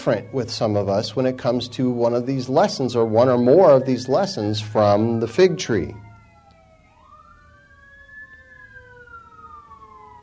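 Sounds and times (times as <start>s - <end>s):
speech: 0.0s - 6.1s
fire truck siren wailing past: 0.0s - 10.2s
low rumble of road noise: 0.0s - 10.2s.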